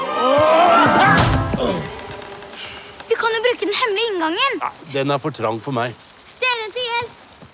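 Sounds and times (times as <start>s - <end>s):
straining rising vocal effort: 0.0s - 4.9s
body slamming hard against a closed portal: 0.9s - 2.0s
speech: 4.2s - 6.0s.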